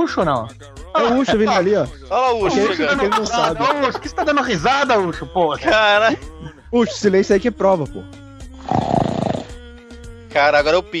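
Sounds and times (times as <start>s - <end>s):
speech: 0.0s - 9.0s, 10.4s - 10.9s
laughter: 2.4s - 7.5s
loud rattling snort of breath: 8.6s - 9.6s.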